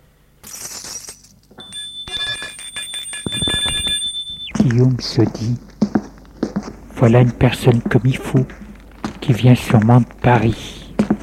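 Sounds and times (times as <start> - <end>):
concierge ringing a bell at a hotel reception: 1.0 - 4.9
speech: 4.6 - 5.7, 7.0 - 8.6, 9.3 - 10.8.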